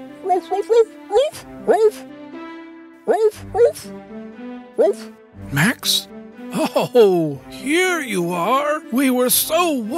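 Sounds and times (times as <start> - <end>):
dog barking in greeting: 0.2 - 2.0, 3.1 - 3.9, 4.8 - 5.1
speech: 0.3 - 2.2, 3.1 - 9.9.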